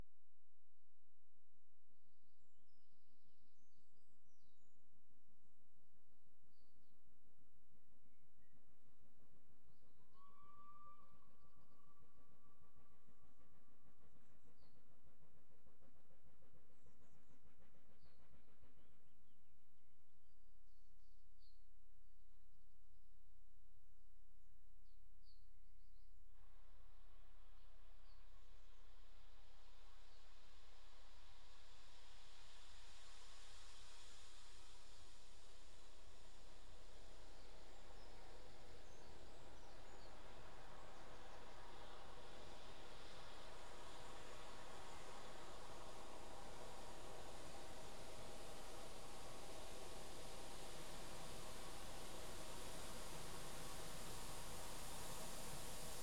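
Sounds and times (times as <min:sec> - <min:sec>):
train approaching and stopping: 0:09.8 - 0:19.8, 0:26.6 - 0:56.0.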